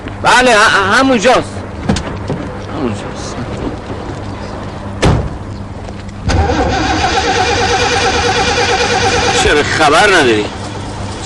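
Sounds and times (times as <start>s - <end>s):
speech: 0.2s - 1.6s, 2.8s - 3.3s, 9.6s - 10.6s
car engine being cranked and starting: 6.2s - 11.2s.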